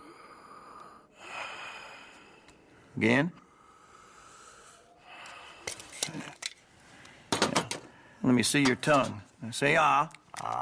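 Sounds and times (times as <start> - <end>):
coughing patient breathing deeply during a medical examination: 0.0 - 8.2
speech: 3.0 - 3.4, 8.3 - 10.6.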